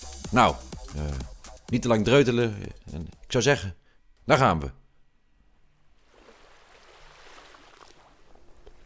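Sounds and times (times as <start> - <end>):
speech: 0.3 - 4.8
sea water lapping: 6.0 - 8.8.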